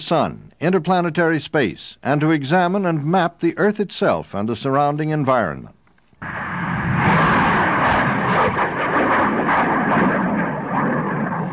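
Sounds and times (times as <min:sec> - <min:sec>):
speech: 0:00.0 - 0:06.4
sounding rocket launch roar: 0:06.2 - 0:11.5.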